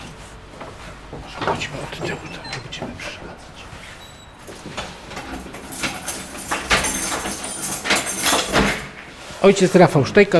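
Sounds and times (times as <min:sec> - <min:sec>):
speech: 0:01.1 - 0:03.7, 0:09.4 - 0:10.3
key unlocking a 1930s lock on a heavy old church door: 0:05.1 - 0:08.9.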